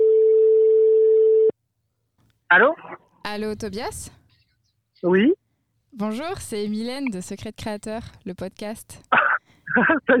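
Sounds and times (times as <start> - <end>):
telephone ringing tone while placing a call: 0.0 - 1.5
speech: 2.5 - 4.2, 5.0 - 5.4, 6.0 - 9.2, 9.8 - 10.1
laughter: 9.7 - 10.1.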